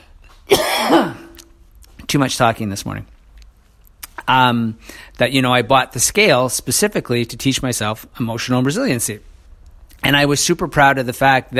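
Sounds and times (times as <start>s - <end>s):
raspy cough: 0.5s - 1.4s
speech: 2.1s - 3.1s, 4.3s - 9.3s, 10.0s - 11.5s.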